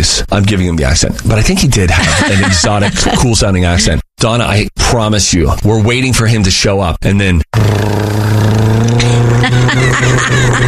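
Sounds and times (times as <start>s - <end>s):
speech: 0.1s - 8.0s, 10.0s - 10.6s
laughter: 1.9s - 3.4s, 9.0s - 10.6s
motorcycle engine riding down a street: 7.6s - 10.6s.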